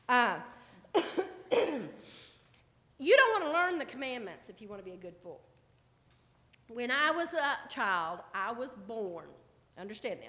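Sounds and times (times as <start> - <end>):
person coughing from allergies: 0.9 - 2.1
speech: 3.7 - 5.6, 6.7 - 10.2.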